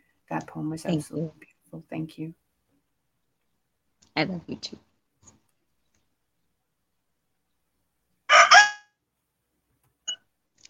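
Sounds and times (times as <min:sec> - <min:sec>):
speech: 0:00.3 - 0:02.4, 0:04.2 - 0:04.9
rooster crowing: 0:08.3 - 0:08.8.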